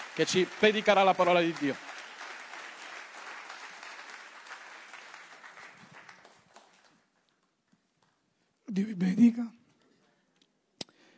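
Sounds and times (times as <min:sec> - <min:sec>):
large audience applause welcoming speaker: 0:00.0 - 0:07.0
speech: 0:00.2 - 0:01.9.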